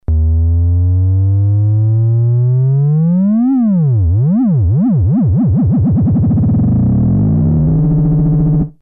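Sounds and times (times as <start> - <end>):
synth with LFO rate modulation: 0.0 - 8.8.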